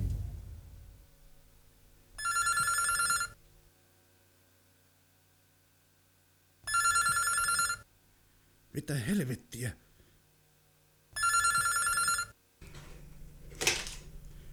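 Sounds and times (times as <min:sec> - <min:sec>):
telephone ringing with electronic trill: 0:02.2 - 0:03.4, 0:06.7 - 0:07.8, 0:11.2 - 0:14.2
speech: 0:08.8 - 0:09.9.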